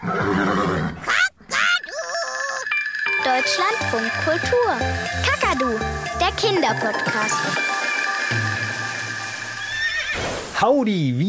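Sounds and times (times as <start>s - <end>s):
horse neighing: 0.0s - 2.8s, 9.6s - 10.3s
speech: 3.4s - 8.5s, 10.6s - 11.2s.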